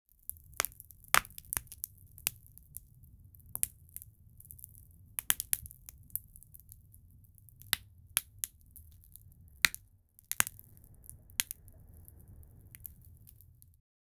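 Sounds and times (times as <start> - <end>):
logs cracking in a campfire: 0.2 - 13.8.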